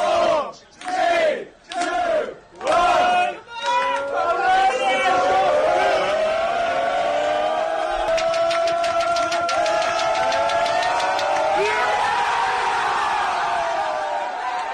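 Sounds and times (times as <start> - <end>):
professional football players shouting and cheering at a match's final whistle: 0.0 - 14.7
rapid clapping: 7.9 - 12.0.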